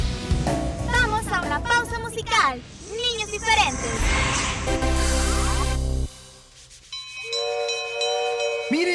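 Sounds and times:
train rumbling: 0.1 - 6.5
speech: 2.5 - 4.8
train whistle of several steady tones: 7.2 - 8.9.

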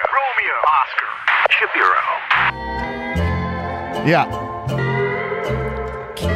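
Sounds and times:
speech: 0.2 - 3.0, 4.0 - 6.3
loud entrance music: 2.3 - 6.3.

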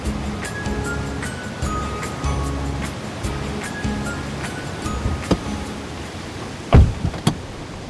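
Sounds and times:
steady roar of surf: 0.0 - 7.8
sharp knocks: 6.7 - 7.4.

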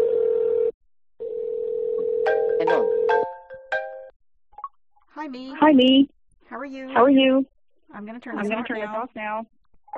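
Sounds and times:
phone dial tone: 0.0 - 3.1
speech: 5.2 - 9.9.

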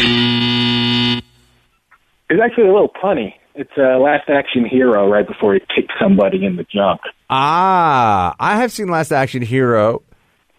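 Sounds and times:
harsh electronic buzzer: 0.0 - 1.7
speech: 2.3 - 10.1.

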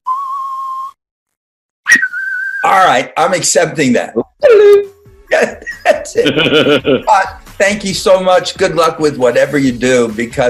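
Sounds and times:
person whistling a western film theme note: 0.0 - 1.0, 1.9 - 2.7
speech: 2.7 - 10.4
laughter: 5.3 - 7.3.

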